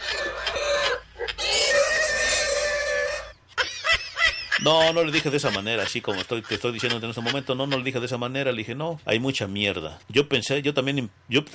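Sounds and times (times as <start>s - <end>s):
pig squealing loudly and shrilly: 0.0s - 5.4s
laughter: 3.6s - 8.1s
speech: 4.6s - 11.5s.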